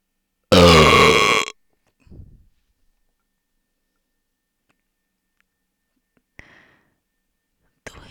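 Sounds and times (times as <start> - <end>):
loud drawn-out burp: 0.5 - 1.5.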